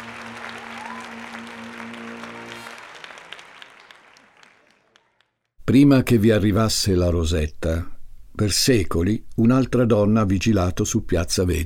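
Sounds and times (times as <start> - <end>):
sustained musical tone: 0.0 - 2.7
warm steady audience applause: 0.0 - 5.5
speech: 5.7 - 11.6.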